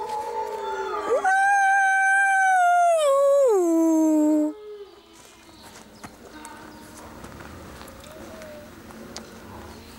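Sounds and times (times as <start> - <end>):
wolf howling in summer heat: 0.0 - 5.0.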